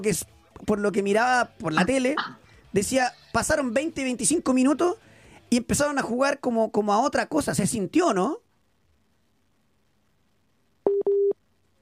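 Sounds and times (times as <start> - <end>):
speech: 0.0 - 8.4
phone busy tone after dropped call: 10.9 - 11.4.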